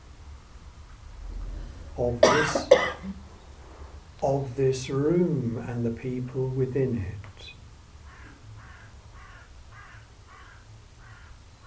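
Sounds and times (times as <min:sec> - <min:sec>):
low background rumble: 0:00.0 - 0:11.6
speech: 0:02.0 - 0:03.3, 0:04.2 - 0:07.6
bird cawing: 0:08.0 - 0:11.6.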